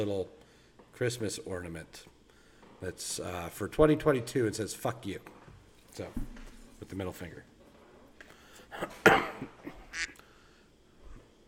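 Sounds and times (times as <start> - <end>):
speech: 0.0 - 0.4, 1.0 - 2.2, 2.8 - 5.4, 6.0 - 7.5, 8.7 - 10.1
ducks quacking: 9.9 - 10.2.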